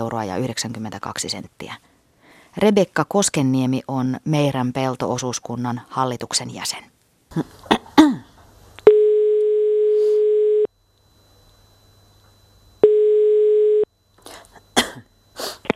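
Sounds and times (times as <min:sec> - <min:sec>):
speech: 0:00.0 - 0:01.9, 0:02.6 - 0:07.8
brief throat-clearing or cough-like noises: 0:07.4 - 0:08.4, 0:14.3 - 0:15.7
telephone ringback tone of long steady electronic beeps: 0:08.9 - 0:10.7, 0:11.4 - 0:14.0.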